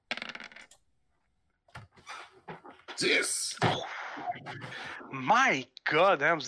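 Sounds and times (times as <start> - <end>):
dice rattling and tumbling across a hard surface: 0.1 - 0.7
speech: 3.0 - 6.4.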